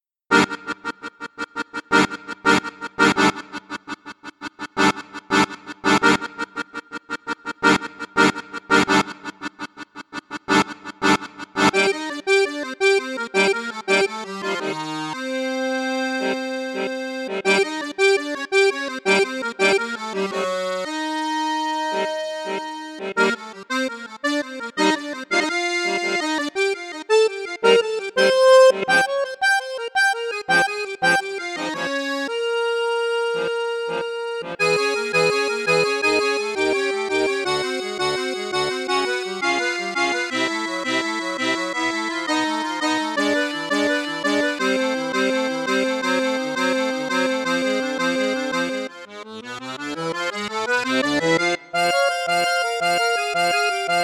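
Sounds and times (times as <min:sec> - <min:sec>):
accordion playing bassoon and flute registers: 0:00.0 - 0:54.0.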